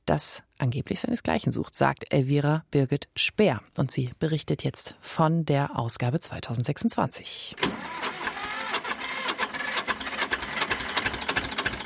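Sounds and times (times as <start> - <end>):
speech: 0.1 - 8.2
1965 tractor engine chugging: 7.6 - 11.8.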